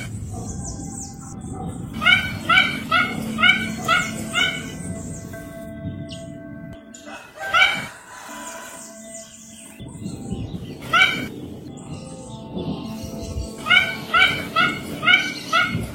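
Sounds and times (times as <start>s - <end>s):
Mandarin duck short harmonic arched calls: 2.0s - 4.8s, 13.6s - 15.9s.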